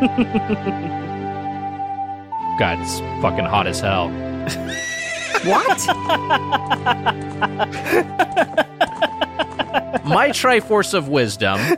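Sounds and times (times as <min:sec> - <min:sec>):
laughter: 0:00.0 - 0:01.1, 0:05.3 - 0:10.6, 0:11.5 - 0:11.7
speech: 0:00.0 - 0:01.2, 0:02.6 - 0:08.7, 0:10.1 - 0:11.7
horse whinnying: 0:04.5 - 0:06.0
horse hooves clip-clopping: 0:05.4 - 0:10.7.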